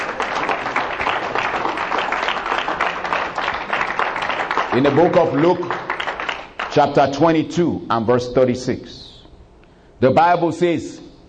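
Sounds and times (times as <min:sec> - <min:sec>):
audience applauding: 0:00.0 - 0:07.0
speech: 0:04.8 - 0:05.9, 0:06.8 - 0:09.0, 0:10.0 - 0:11.0.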